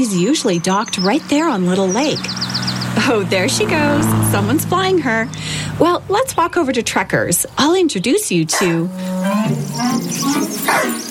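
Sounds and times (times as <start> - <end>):
speech: 0.0 - 11.0
Australian shepherd barking and yipping: 8.5 - 8.8, 9.9 - 11.0
Australian shepherd whining: 9.5 - 11.0.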